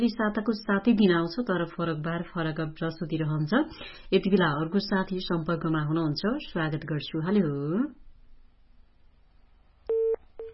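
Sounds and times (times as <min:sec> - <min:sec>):
speech: 0:00.0 - 0:08.0
telephone busy tone beeps after a caller's line is cut: 0:09.9 - 0:10.5.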